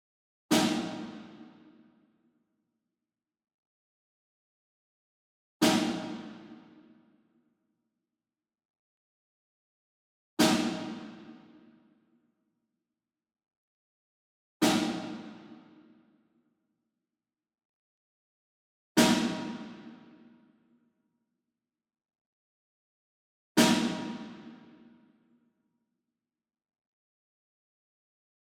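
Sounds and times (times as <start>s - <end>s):
single distant snare drum block hit: 0.5s - 1.5s, 5.6s - 6.7s, 10.4s - 11.4s, 14.6s - 15.6s, 19.0s - 20.0s, 23.6s - 24.6s.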